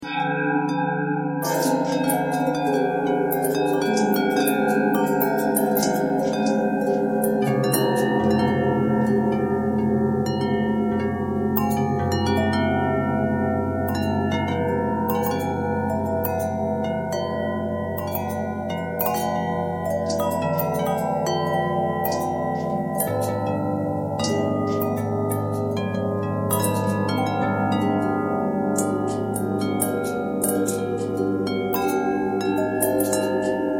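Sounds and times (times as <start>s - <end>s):
long bell with pitch bend: 0.0s - 33.7s.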